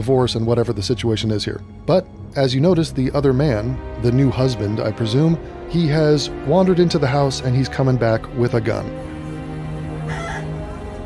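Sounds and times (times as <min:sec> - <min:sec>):
speech: 0:00.0 - 0:09.1
rooster crowing: 0:10.0 - 0:10.6.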